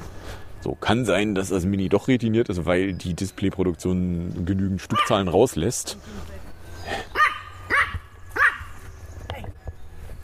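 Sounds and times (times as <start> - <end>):
faint noise: 0.0 - 10.2
speech: 0.6 - 7.1
dog barking while passing by: 4.9 - 5.2, 7.1 - 8.7.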